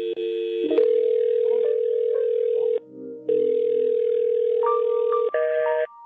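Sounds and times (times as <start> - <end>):
electronic telephone ring: 0.0 - 5.8.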